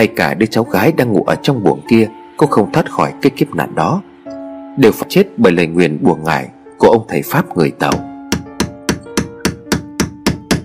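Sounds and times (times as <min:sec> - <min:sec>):
speech: 0:00.0 - 0:04.1, 0:04.8 - 0:08.1
hammer driving an iron nail into a wobbly bed leg: 0:07.9 - 0:10.6.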